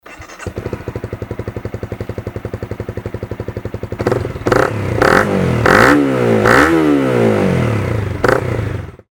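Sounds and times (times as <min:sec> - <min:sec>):
CBR250R motorcycle engine: 0:00.0 - 0:09.1.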